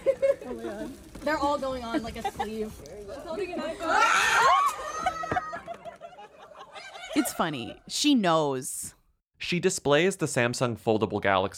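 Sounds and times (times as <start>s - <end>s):
group of people laughing and chattering: 0.0s - 7.8s
speech: 0.8s - 4.6s, 7.2s - 11.5s
woman's loud high-pitched shriek from a played video: 3.8s - 5.7s.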